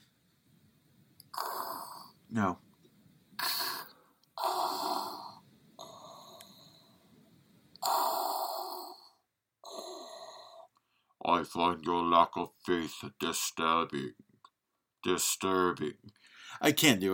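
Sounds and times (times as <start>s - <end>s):
person imitating heavy respirator breathing: 1.3s - 2.2s, 3.4s - 6.7s, 7.8s - 10.7s
speech: 2.3s - 2.6s, 11.4s - 14.2s, 15.0s - 17.1s.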